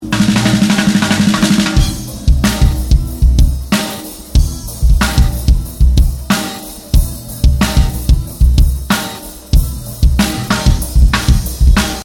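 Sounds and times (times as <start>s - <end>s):
snare drum: 0.0s - 12.0s.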